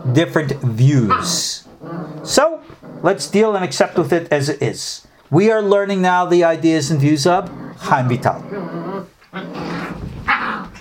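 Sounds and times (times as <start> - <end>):
dogs growling in a dog fight: 0.0 - 3.6, 7.2 - 10.8
speech: 0.2 - 1.6, 2.2 - 8.8.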